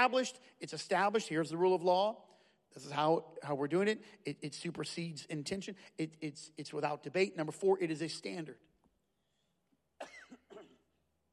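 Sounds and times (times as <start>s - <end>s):
speech: 0.0s - 8.7s
man clearing his throat: 10.0s - 10.9s
man coughing: 10.0s - 11.0s.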